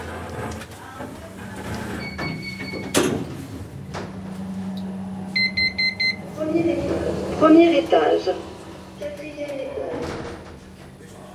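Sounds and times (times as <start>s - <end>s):
elevator doors sliding shut with a solid clunk: 0.0s - 11.3s
steady low hum of the lift moving: 0.0s - 11.3s
elevator tone: 1.2s - 11.3s
electronic beeps: 5.4s - 6.3s
speech: 7.4s - 8.5s.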